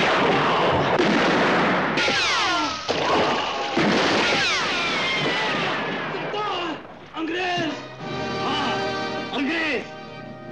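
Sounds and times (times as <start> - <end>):
rapid gunfire in a battle: 0.0 - 6.7
people shouting and crying out: 2.0 - 10.0.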